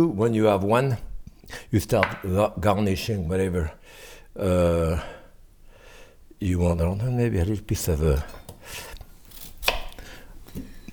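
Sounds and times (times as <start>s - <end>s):
speech: 0.0s - 5.2s, 6.4s - 8.9s
knife chopping onion on a cutting board: 9.3s - 10.0s.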